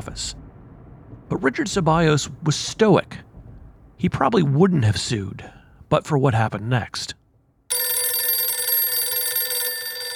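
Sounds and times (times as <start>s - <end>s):
speech: 0.0s - 0.4s, 1.3s - 3.3s, 4.0s - 7.2s
telephone bell ringing at a home: 7.7s - 10.1s.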